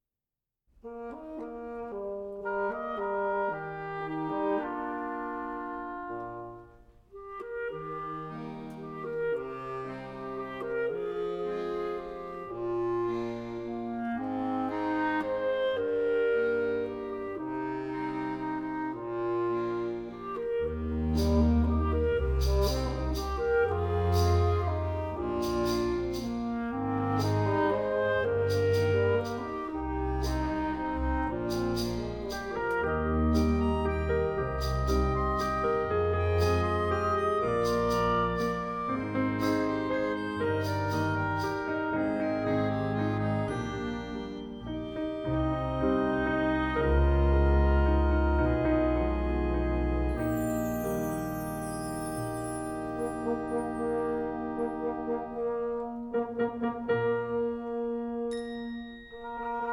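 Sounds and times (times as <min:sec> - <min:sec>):
orchestra playing alone: 0:00.8 - 0:59.7.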